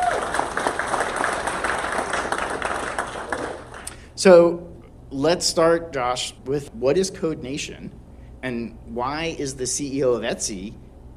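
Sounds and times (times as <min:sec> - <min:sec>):
room full of people applauding: 0:00.0 - 0:03.9
speech: 0:04.2 - 0:10.8.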